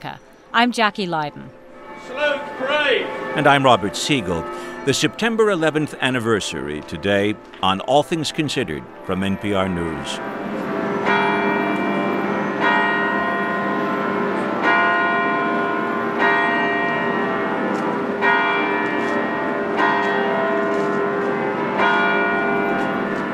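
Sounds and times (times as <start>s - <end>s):
speech: 0.0s - 1.6s, 2.6s - 10.5s
church bells pealing on a windy morning: 1.3s - 23.3s.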